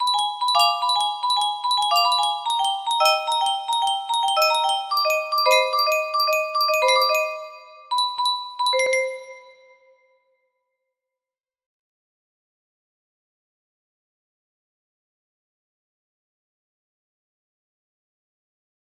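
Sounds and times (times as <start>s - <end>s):
music box melody: 0.0s - 9.9s.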